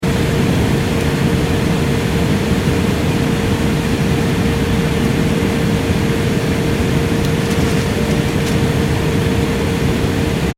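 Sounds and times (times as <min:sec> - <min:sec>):
commercial Airbus A340 interior in-flight ambience: 0:00.0 - 0:10.5.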